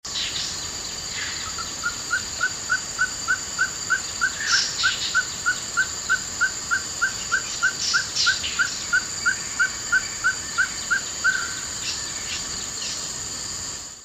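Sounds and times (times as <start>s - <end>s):
Kalophrynus limbooliati black-spotted sticky frog calling in Sime Forest Singapore: 1.0s - 13.0s.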